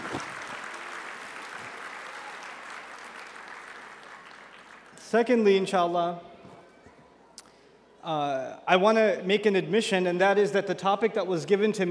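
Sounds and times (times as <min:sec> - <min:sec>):
crowd applauding: 0:00.0 - 0:05.4
speech: 0:05.1 - 0:06.3, 0:08.0 - 0:11.9.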